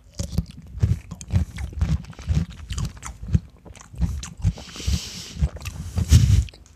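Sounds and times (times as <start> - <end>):
biting and chewing crunchy salt-dill pickles: 0.0 - 6.7.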